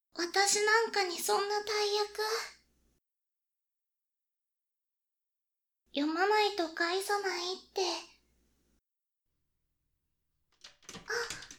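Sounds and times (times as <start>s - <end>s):
speech: 0.2s - 2.6s, 6.0s - 8.1s, 11.0s - 11.4s
door knocks and rattles: 10.6s - 11.5s.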